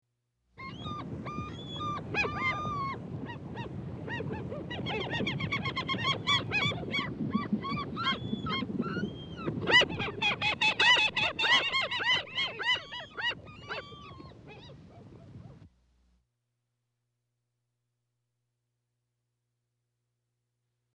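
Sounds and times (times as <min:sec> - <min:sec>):
gulls: 0:00.6 - 0:15.7.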